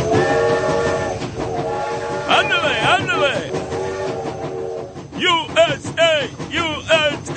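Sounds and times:
steady sustained horn-like tones of a train: 0.0 - 5.0
train rumbling and clattering: 0.0 - 7.3.

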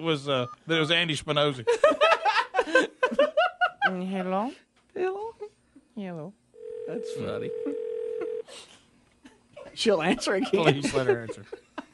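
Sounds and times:
speech: 0.0 - 3.2, 3.9 - 5.3, 6.0 - 7.8, 9.8 - 11.6
phone line ringing tone: 6.6 - 8.4
laughter: 10.1 - 11.9.

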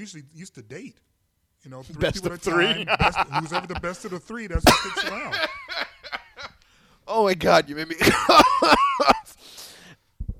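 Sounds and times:
speech: 0.0 - 5.9, 7.1 - 9.1
laughter: 2.0 - 6.6, 7.8 - 9.4
person coughing harshly in a studio: 4.7 - 5.5
raspy wheezing breath: 9.3 - 10.1.

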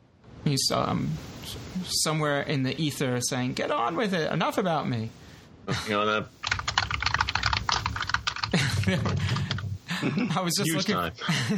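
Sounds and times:
speech: 0.5 - 6.6, 8.9 - 9.4, 10.0 - 11.5
rapid clattering keystrokes on a computer keyboard: 6.4 - 9.8.

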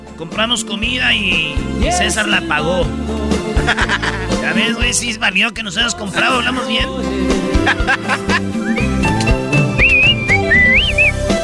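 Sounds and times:
speech: 0.2 - 8.8
people laughing: 3.5 - 4.9, 6.0 - 9.0
person whistling a warbling melody: 9.6 - 11.4.

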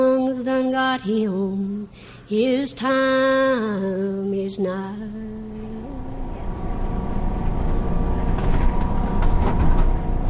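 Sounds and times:
speech: 0.8 - 5.3
moving city bus engine rumble and road noise: 5.4 - 10.2.

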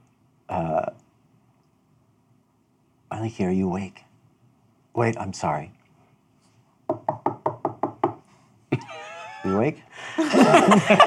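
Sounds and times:
speech: 0.5 - 1.0, 3.2 - 4.0, 5.0 - 5.8, 9.5 - 11.0
quick firm knocks on a door: 6.9 - 8.2
laughter: 8.7 - 11.0.

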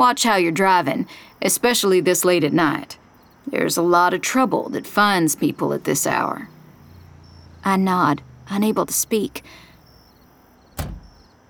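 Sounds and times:
speech: 0.0 - 6.5, 7.6 - 9.6
car door shutting: 10.7 - 11.2.

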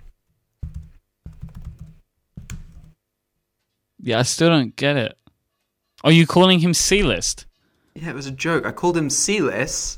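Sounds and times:
typing on a computer keyboard: 0.0 - 3.0
speech: 4.0 - 5.2, 6.0 - 9.9.

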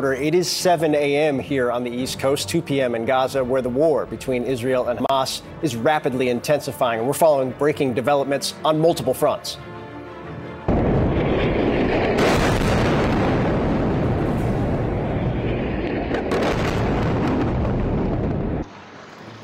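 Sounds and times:
speech: 0.0 - 9.7
artillery fire and airstrikes over Gaza: 10.7 - 18.6.

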